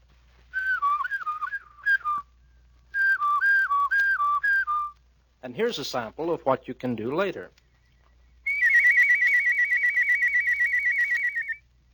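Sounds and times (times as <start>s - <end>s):
person whistling a practiced clear steady tone: 0.5s - 2.3s, 2.9s - 5.0s, 8.5s - 11.6s
speech: 5.5s - 7.6s.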